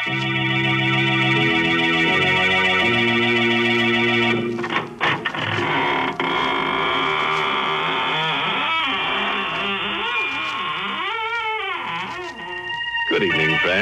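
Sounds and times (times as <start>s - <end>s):
sustained organ chords: 0.0s - 6.5s, 9.2s - 13.8s
squeaking door creaking open: 4.6s - 13.0s.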